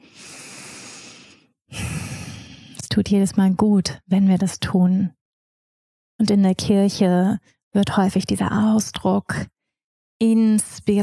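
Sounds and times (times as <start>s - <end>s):
deep deliberate breathing in and out during a guided yoga meditation: 0.0s - 2.8s
speech: 3.0s - 5.2s, 6.2s - 9.5s, 10.2s - 11.0s.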